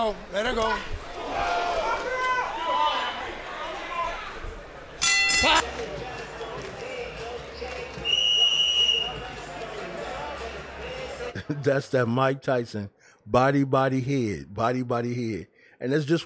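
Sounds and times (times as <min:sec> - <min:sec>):
speech: 0:00.0 - 0:01.5, 0:05.4 - 0:06.0, 0:11.5 - 0:16.2
steady roar of arena crowd noise: 0:01.0 - 0:04.6, 0:05.4 - 0:11.4
boxing ring bell ending the round: 0:05.0 - 0:05.6.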